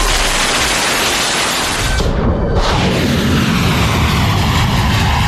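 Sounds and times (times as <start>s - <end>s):
large aircraft engines roaring in flight: 0.2s - 5.2s.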